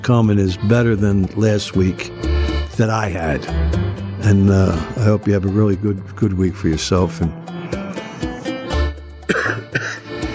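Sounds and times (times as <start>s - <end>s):
speech: 0.0s - 7.5s
person coughing with a persistent cough: 9.2s - 10.2s.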